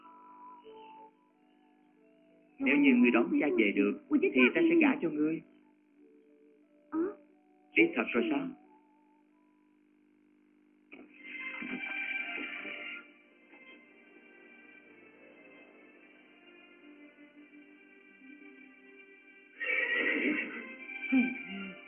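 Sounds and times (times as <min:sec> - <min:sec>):
speech: 0:02.6 - 0:05.5, 0:07.8 - 0:08.6
quieter drawn-out horse whinnying: 0:19.6 - 0:20.8
stallion neighing loudly and shrilly: 0:19.6 - 0:21.6.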